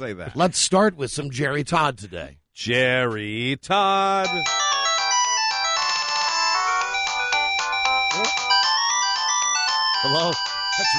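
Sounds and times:
speech: 0.0 - 4.7, 10.0 - 10.9
bright melodic cell phone ringtone: 4.2 - 10.9.

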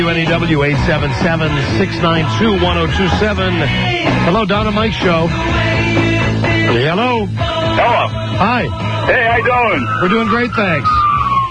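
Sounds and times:
speech: 0.0 - 6.0, 6.7 - 11.2
man speaking through a phone line: 7.8 - 11.1
police siren wailing: 9.0 - 11.5.

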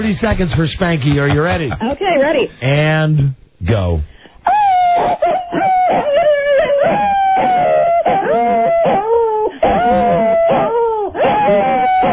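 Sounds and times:
speech: 0.0 - 4.2
laughter: 0.1 - 2.0, 5.0 - 12.1
dog howling: 4.5 - 12.1.

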